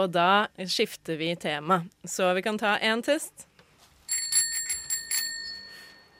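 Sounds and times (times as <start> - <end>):
speech: 0.0 - 3.5
small handheld bell rung as a toast signal: 4.1 - 6.1.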